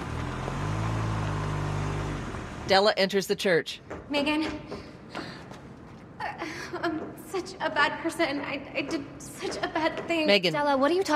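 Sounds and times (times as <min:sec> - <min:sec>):
car engine rumbling as the car pulls into a parking lot: 0:00.0 - 0:02.8
speech: 0:02.7 - 0:05.3, 0:06.7 - 0:11.1.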